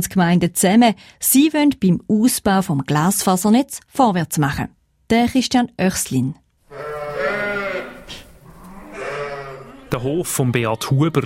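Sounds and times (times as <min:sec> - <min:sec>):
speech: 0:00.0 - 0:07.0, 0:09.9 - 0:11.2
herd of dairy sheep bleating in a barn: 0:06.7 - 0:11.1.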